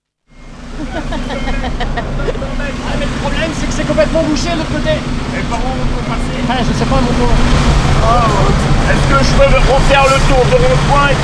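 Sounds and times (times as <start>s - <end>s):
truck passing on a road during a street protest: 0.3s - 11.2s
laughter: 0.6s - 4.2s
speech: 4.0s - 11.2s.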